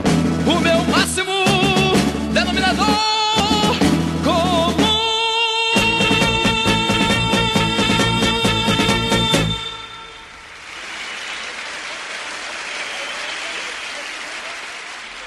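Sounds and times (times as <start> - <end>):
1975 Brazilian pop song with full band and sung melody: 0.5 - 10.1.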